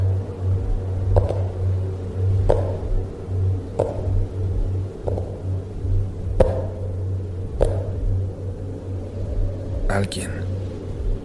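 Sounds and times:
steady low hum: 0:00.0 - 0:11.2
knocking on a wall: 0:01.1 - 0:01.5, 0:02.4 - 0:02.9, 0:03.8 - 0:04.2, 0:05.0 - 0:05.4, 0:06.4 - 0:06.8, 0:07.6 - 0:08.1
speech: 0:10.0 - 0:10.4.

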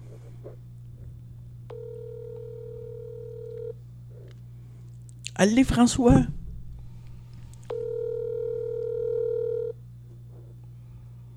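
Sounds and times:
constant low hum: 0:00.0 - 0:11.3
telephone ring tone while a call waits for an answer: 0:01.7 - 0:03.8, 0:07.7 - 0:09.8
speech: 0:05.4 - 0:06.4.

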